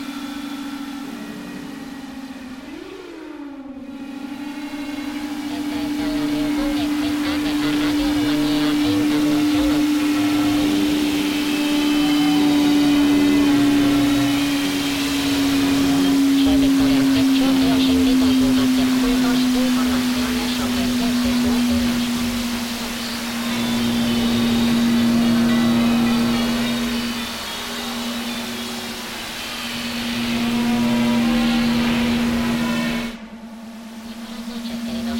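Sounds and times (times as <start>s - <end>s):
steady low hum: 0.0s - 35.1s
faint voice-like fragments in radio static: 5.0s - 33.2s, 34.0s - 35.1s
radio static hiss and crackle from a receiver: 5.0s - 35.1s.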